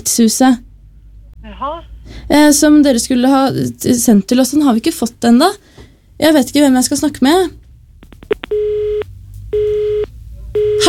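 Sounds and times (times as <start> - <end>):
speech: 0.0 - 0.7, 1.6 - 7.6
telephone busy tone after the other side hung up: 8.4 - 9.0, 9.6 - 10.8.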